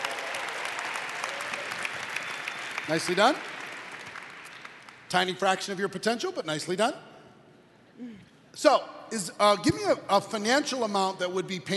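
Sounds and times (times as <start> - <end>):
audience applause: 0.0 - 5.0
speech: 2.9 - 3.5, 5.1 - 7.1, 8.0 - 11.7.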